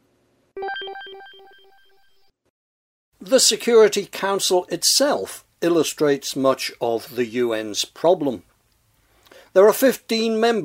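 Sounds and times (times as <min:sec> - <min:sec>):
telephone ringing with a bright electronic ringtone: 0:00.6 - 0:02.1
speech: 0:03.2 - 0:08.5, 0:09.5 - 0:10.6.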